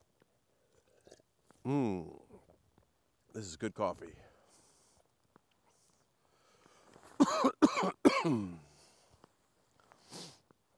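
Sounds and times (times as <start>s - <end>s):
speech: 1.6s - 2.2s, 3.4s - 4.3s, 7.8s - 8.7s
person coughing: 7.2s - 8.6s.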